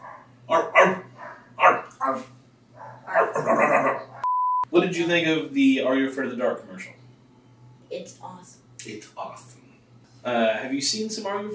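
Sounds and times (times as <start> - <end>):
dog barking in rough overlapping barks: 0.0 - 4.3
faint steady hum: 0.0 - 11.5
speech: 4.8 - 7.0, 7.9 - 9.6, 10.2 - 11.5.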